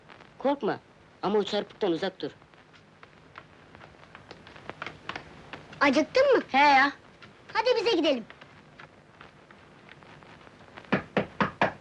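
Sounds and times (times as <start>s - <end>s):
speech: 0.4s - 2.4s, 5.8s - 7.0s, 7.6s - 8.3s
firm knocking on a door: 10.9s - 11.7s.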